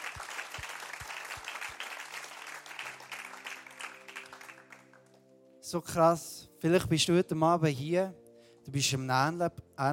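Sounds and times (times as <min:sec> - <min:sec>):
audience applause at a talk on faith and the Bible: 0:00.0 - 0:05.2
speech: 0:05.7 - 0:09.9.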